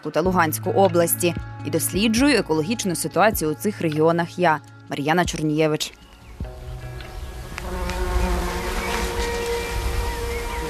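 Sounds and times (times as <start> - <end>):
speech: 0.0 - 6.0
large violet-black carpenter bee buzzing: 6.4 - 10.6.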